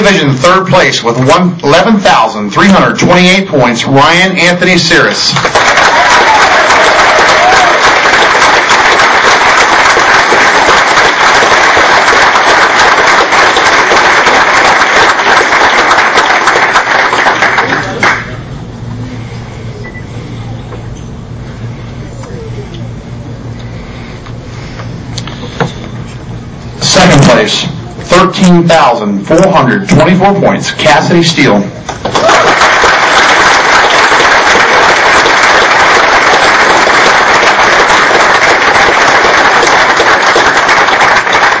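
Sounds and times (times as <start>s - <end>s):
speech: 0.1s - 5.7s, 27.2s - 31.8s
crowd applauding for an award winner: 5.3s - 18.4s, 32.0s - 41.5s.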